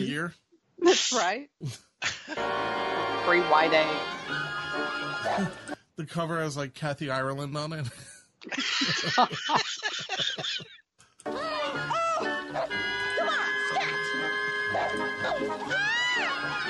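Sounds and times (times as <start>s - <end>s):
speech: 0.0s - 11.9s, 14.7s - 16.6s
laughter: 8.5s - 10.7s, 11.8s - 16.6s
dog yipping and whining high-pitched: 11.6s - 16.6s
dog barking sharply: 12.5s - 15.6s.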